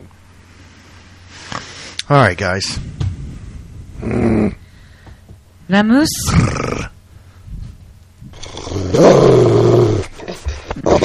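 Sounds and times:
speech: 2.1s - 2.9s, 4.0s - 4.6s, 5.7s - 6.8s
several people imitating an angry growling poodle: 4.0s - 4.6s, 8.3s - 11.0s.

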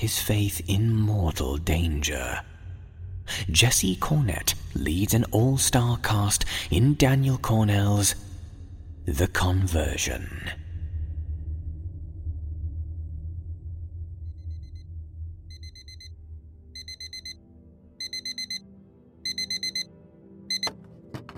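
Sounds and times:
speech: 0.0s - 2.5s, 3.3s - 8.3s, 9.0s - 10.6s
low rumbling background: 0.0s - 20.3s
electronic alarm clock beeping: 15.5s - 16.2s, 16.8s - 19.9s, 20.5s - 20.8s.

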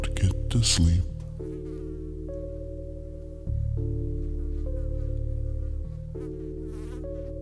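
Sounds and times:
speech: 0.1s - 1.1s
housefly buzzing around: 1.2s - 2.7s, 3.4s - 7.4s.

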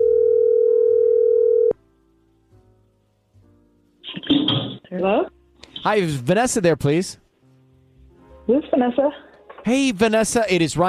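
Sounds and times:
phone line electronic ring tone: 0.0s - 1.8s
speech: 4.9s - 7.2s, 8.5s - 10.8s.

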